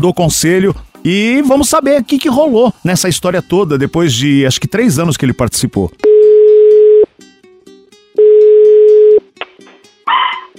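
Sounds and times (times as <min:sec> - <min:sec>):
speech: 0:00.0 - 0:06.1
long steady ringing tones on a phone line: 0:06.0 - 0:07.1, 0:08.2 - 0:09.2
dog barking tinny through a phone receiver: 0:10.1 - 0:10.5.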